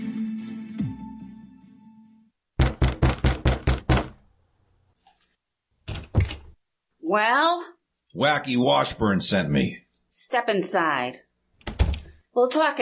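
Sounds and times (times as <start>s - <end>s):
fist pounding on a wooden door: 2.6s - 4.2s, 5.9s - 6.5s, 11.7s - 12.1s
speech: 7.1s - 11.3s, 12.4s - 12.8s.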